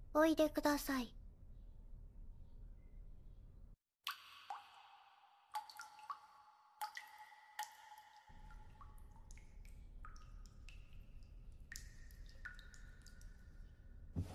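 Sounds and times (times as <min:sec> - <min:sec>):
speech: 0:00.1 - 0:01.2
water dripping and plopping in a shower: 0:04.0 - 0:14.1.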